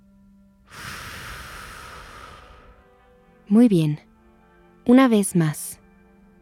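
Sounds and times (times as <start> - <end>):
deep inhale and exhale during a guided relaxation exercise: 0.7 - 3.4
speech: 3.5 - 4.1, 4.9 - 5.6.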